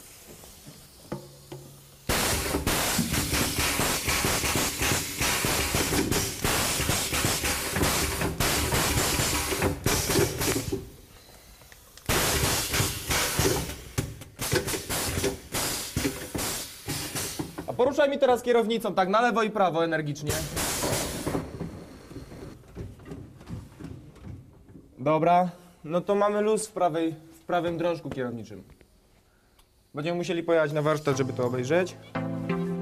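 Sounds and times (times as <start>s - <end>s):
pneumatic suspension play detector jerking a vehicle's wheels: 0.0s - 17.8s, 20.3s - 22.6s
speech: 17.8s - 20.6s, 25.1s - 28.8s, 30.0s - 32.3s.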